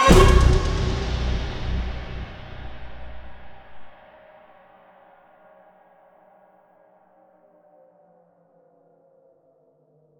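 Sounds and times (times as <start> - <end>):
big stinger: 0.0 - 3.9.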